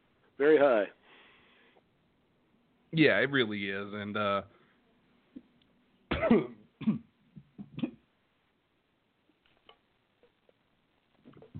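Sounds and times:
speech: 0.4 - 1.0, 2.9 - 4.6, 6.2 - 7.1
harsh raspy coughing fit: 6.1 - 7.1.

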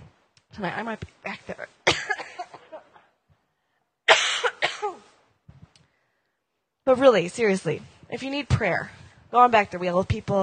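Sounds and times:
speech: 0.6 - 1.8, 6.9 - 10.4
person coughing: 1.9 - 3.0, 4.1 - 5.1.

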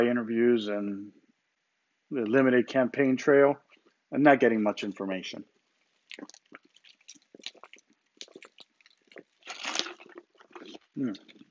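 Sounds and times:
speech: 0.0 - 1.2, 2.1 - 5.5, 6.1 - 6.7, 11.0 - 11.3
person drinking water with sips and clicks: 5.6 - 11.5
deep swallow: 6.0 - 11.5
loud slurping gulp: 6.0 - 11.5.

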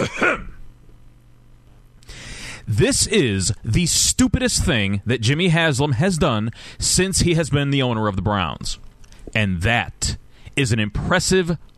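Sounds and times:
throat clearing: 0.0 - 0.6
speech: 2.7 - 11.7.

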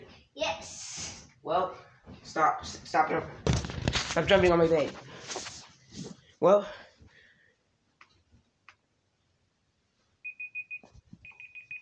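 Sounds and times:
speech: 1.5 - 3.5, 4.2 - 5.4, 6.4 - 6.8
electronic device beeping in rapid high tones: 10.2 - 11.7.

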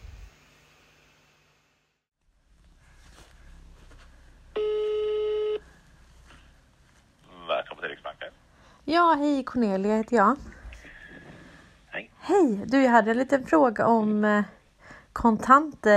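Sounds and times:
telephone ringback tone while calling a central bank: 4.6 - 5.6
speech: 8.9 - 10.5, 12.3 - 14.6, 15.2 - 15.9.

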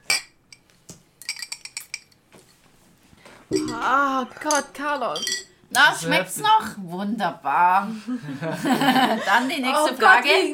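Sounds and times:
glasses clinking together in a toast: 0.0 - 0.6, 1.2 - 2.2, 3.5 - 5.6
speech: 3.5 - 10.5
laughter: 8.0 - 9.7.

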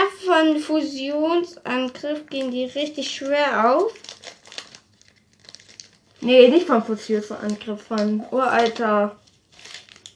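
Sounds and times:
speech: 0.4 - 4.2, 6.2 - 9.2
crinkly plastic booster pack wrapper rustling: 1.7 - 10.1.

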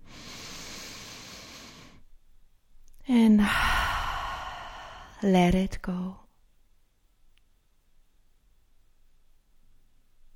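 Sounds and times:
huge deep inhale during a guided relaxation exercise: 0.0 - 2.0, 3.4 - 5.2
speech: 3.1 - 3.7, 5.2 - 6.2.

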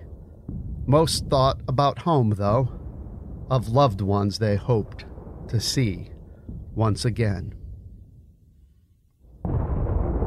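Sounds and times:
artillery blast and barrage of explosions: 0.0 - 10.2
low rumble: 0.0 - 10.2
speech: 0.9 - 2.8, 3.5 - 6.1, 6.8 - 7.6.

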